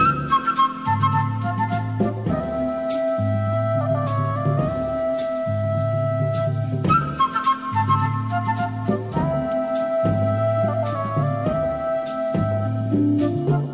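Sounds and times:
jazzy flute loop: 0.0s - 13.7s.

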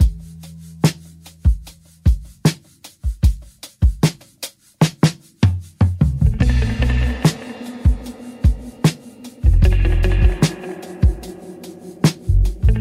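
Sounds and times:
boombap drum loop: 0.0s - 12.8s
guitar: 6.1s - 12.8s.

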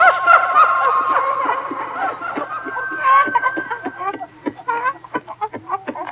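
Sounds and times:
person laughing with echo: 0.0s - 4.3s.

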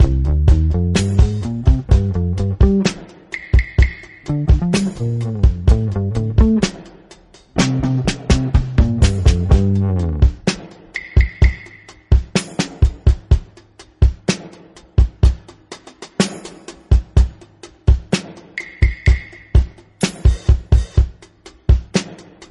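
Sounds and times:
bass: 0.0s - 3.0s, 3.9s - 6.9s, 7.5s - 10.6s
boombap drum loop: 0.0s - 22.4s.

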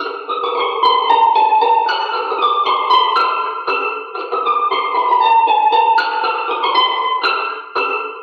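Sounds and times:
scratching string instrument loops: 0.0s - 8.2s.

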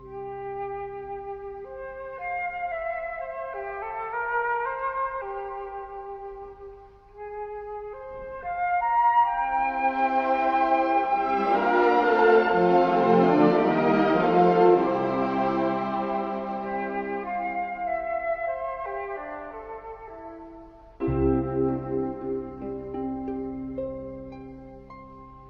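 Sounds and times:
flute loop: 0.0s - 25.4s
strings loop: 9.3s - 25.4s.

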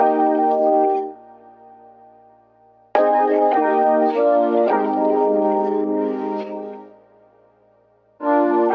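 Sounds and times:
juicy keys loop: 0.0s - 1.8s, 3.0s - 7.1s, 8.2s - 8.7s.

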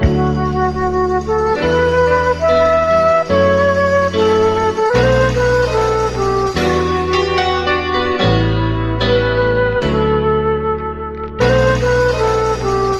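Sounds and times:
sad flute loop: 0.0s - 12.9s
sad piano loop: 0.0s - 12.9s.

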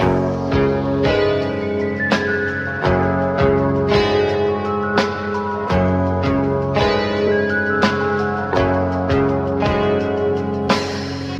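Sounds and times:
guitar: 0.0s - 11.3s
keys: 0.0s - 11.3s.

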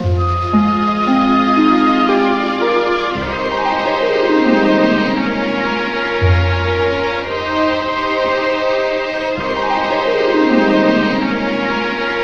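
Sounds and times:
jazz flute loop: 0.0s - 12.2s.

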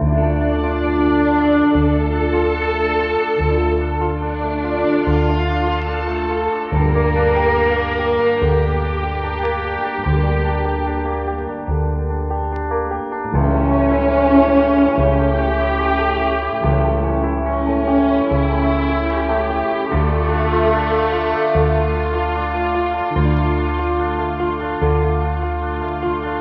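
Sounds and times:
piano playing a sad loop: 0.0s - 26.3s
strings playing a sad loop: 0.0s - 26.3s.

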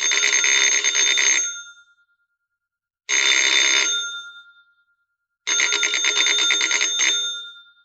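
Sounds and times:
old-fashioned phone ringing: 0.0s - 1.9s, 3.1s - 4.8s, 5.5s - 7.8s.

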